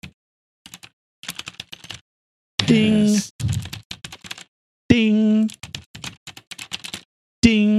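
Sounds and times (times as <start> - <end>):
crisp clacky keystrokes on a mechanical keyboard: 0.7 - 2.0, 2.6 - 4.5, 5.5 - 7.1
speech: 2.7 - 3.7, 4.9 - 5.6.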